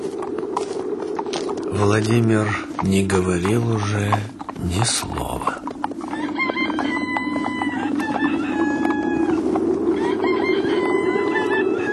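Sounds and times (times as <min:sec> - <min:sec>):
hens clucking: 0:00.6 - 0:11.9
steady farmyard murmur: 0:00.6 - 0:11.9
speech: 0:01.8 - 0:05.5
roosters crowing at daybreak in snowy winter: 0:05.9 - 0:11.9.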